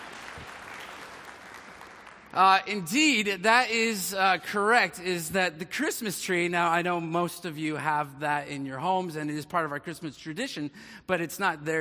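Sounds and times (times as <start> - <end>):
audience applause: 0.0 - 2.5
speech: 2.3 - 11.8.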